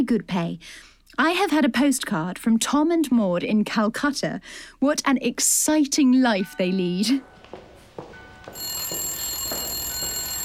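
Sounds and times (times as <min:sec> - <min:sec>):
speech: 0:00.0 - 0:07.3
telephone bell ringing: 0:08.2 - 0:10.4.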